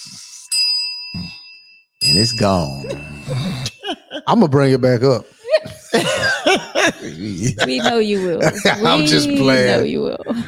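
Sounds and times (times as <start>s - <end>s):
bright bell strike: 0.5s - 4.2s
speech: 2.0s - 3.5s, 4.1s - 5.3s, 6.0s - 10.4s
laughter: 2.8s - 4.5s, 5.4s - 10.4s.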